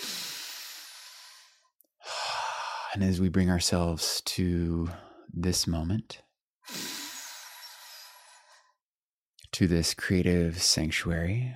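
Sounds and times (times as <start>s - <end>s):
long slow breath during a guided breathing exercise: 0.0s - 3.0s, 6.7s - 8.7s
speech: 3.0s - 6.8s, 9.6s - 11.5s.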